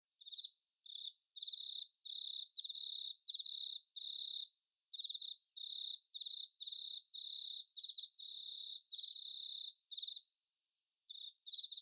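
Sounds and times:
cricket chirping: 0.2 - 10.3, 11.1 - 11.8.

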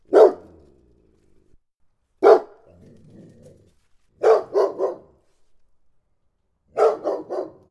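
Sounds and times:
Labrador dog barking: 0.0 - 0.7, 2.2 - 2.8, 4.2 - 5.2, 6.7 - 7.7.

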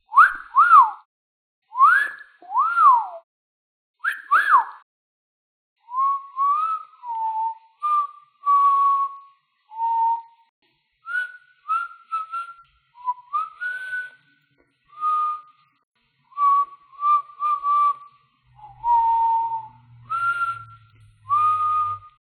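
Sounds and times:
person whistling: 0.1 - 1.0, 1.7 - 3.2, 4.0 - 4.8, 5.9 - 10.4, 11.1 - 14.2, 14.9 - 15.6, 16.3 - 22.2.

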